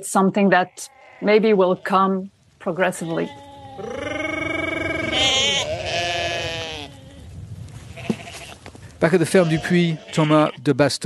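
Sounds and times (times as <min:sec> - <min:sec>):
speech: 0:00.0 - 0:04.1, 0:09.0 - 0:11.0
sheep bleating on a farm: 0:00.5 - 0:02.1, 0:02.8 - 0:07.3, 0:08.0 - 0:08.6, 0:09.2 - 0:10.6.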